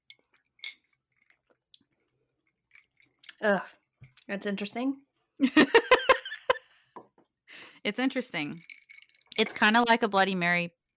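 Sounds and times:
glassware and ice tapping and rattling: 0.0 - 1.6, 2.4 - 4.2, 8.3 - 10.0
speech: 3.4 - 5.8, 7.8 - 8.7, 9.4 - 10.8.

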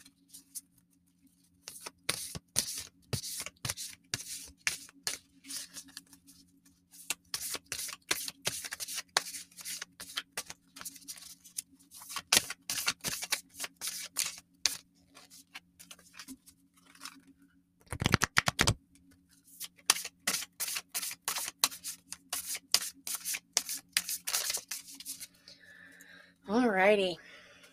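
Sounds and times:
oracle card deck shuffling: 1.6 - 6.3, 7.0 - 17.3, 17.9 - 18.8, 19.6 - 25.3
speech: 26.9 - 27.2.

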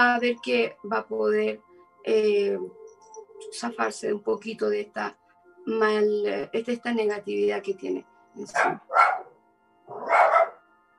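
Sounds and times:
speech: 0.0 - 2.8, 3.4 - 9.2
dog barking: 8.6 - 10.6.

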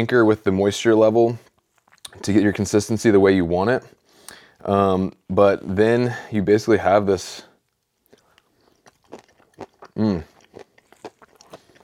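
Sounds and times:
speech: 0.0 - 1.5, 2.2 - 4.0, 4.6 - 7.5, 9.6 - 10.3
crackling chews of a crunchy homemade bar: 1.4 - 2.6, 7.6 - 11.8
crisp bite into a crunchy homemade high-protein high-calorie bar: 8.1 - 11.8.

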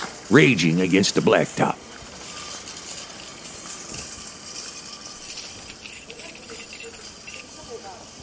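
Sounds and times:
speech: 0.3 - 1.8
keys jingling: 4.7 - 7.7.

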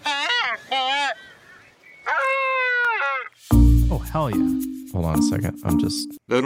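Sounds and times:
albatross harsh honking calls: 0.0 - 3.5
speech: 4.1 - 6.4.

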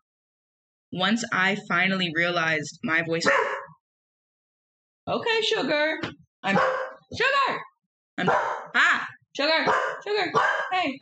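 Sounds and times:
speech: 0.9 - 3.7, 5.1 - 11.0
dog barking with whining howl-like tone: 3.2 - 3.8, 6.5 - 7.1, 8.2 - 8.7, 9.6 - 11.0.

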